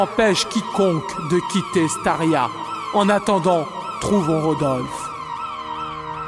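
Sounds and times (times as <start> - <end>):
speech: 0.0 - 5.0
building exit alarm siren wailing: 0.0 - 6.2.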